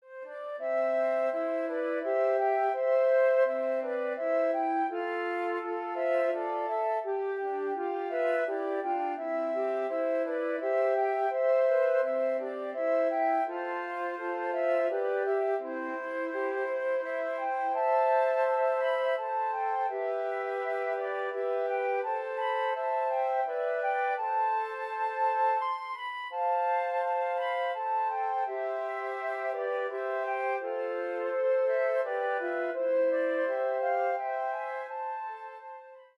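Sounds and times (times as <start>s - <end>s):
flute trio playing: 0.1s - 36.1s.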